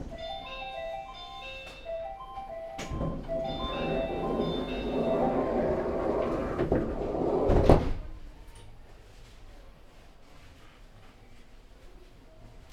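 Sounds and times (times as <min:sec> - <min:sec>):
quiet platform ambience: 0:00.1 - 0:06.6
station announcement: 0:00.1 - 0:07.4
melodic chime: 0:00.2 - 0:05.9
monorail train doors sliding shut with a firm thud: 0:02.5 - 0:08.2.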